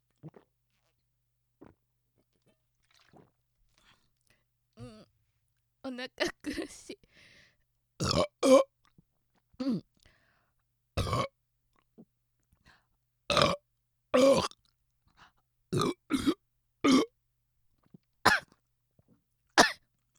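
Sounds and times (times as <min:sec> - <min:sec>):
person burping after drinking cider: 0:08.0 - 0:08.7, 0:11.0 - 0:11.3, 0:13.3 - 0:13.6, 0:14.2 - 0:14.6, 0:15.8 - 0:17.1
rough coughing as if choking: 0:18.3 - 0:18.5, 0:19.6 - 0:19.8.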